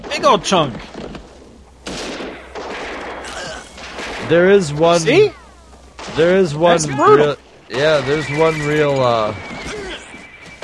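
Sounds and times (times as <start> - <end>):
speech: 0.2 - 0.9, 4.3 - 5.4, 6.1 - 9.8
Gatling gun firing in a film soundtrack: 1.8 - 5.3, 6.0 - 6.9.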